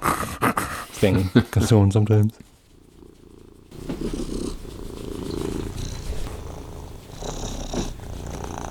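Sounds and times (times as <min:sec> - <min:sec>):
speech: 0:01.0 - 0:02.6
faint rustles: 0:02.4 - 0:08.7
domestic cat purring: 0:02.6 - 0:08.7.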